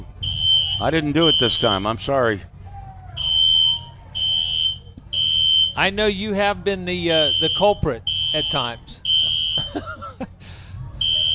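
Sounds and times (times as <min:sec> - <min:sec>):
shrill high-pitched fire alarm beeping: 0:00.2 - 0:01.8, 0:03.2 - 0:05.8, 0:07.2 - 0:09.9, 0:11.0 - 0:11.3
speech: 0:00.8 - 0:02.5, 0:05.8 - 0:09.0, 0:09.7 - 0:10.3
laughter: 0:09.2 - 0:10.8.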